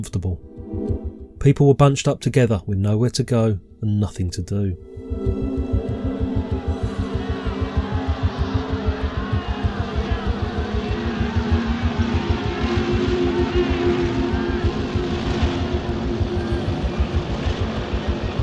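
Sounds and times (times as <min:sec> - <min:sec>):
speech: 0:00.0 - 0:05.5
Harley-Davidson motorcycle engines revving in a parade of bikes: 0:06.0 - 0:18.4.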